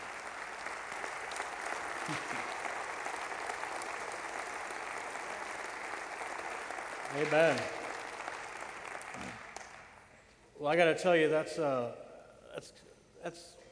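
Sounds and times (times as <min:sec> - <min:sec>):
audience applause: 0:00.0 - 0:10.1
speech: 0:02.1 - 0:02.6, 0:07.1 - 0:07.8, 0:10.6 - 0:12.0, 0:12.6 - 0:13.6.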